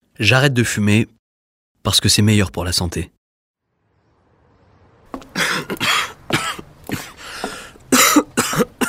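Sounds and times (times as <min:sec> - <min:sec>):
speech: 0:00.2 - 0:01.2, 0:01.8 - 0:03.2
person coughing: 0:05.4 - 0:07.2, 0:07.9 - 0:08.8.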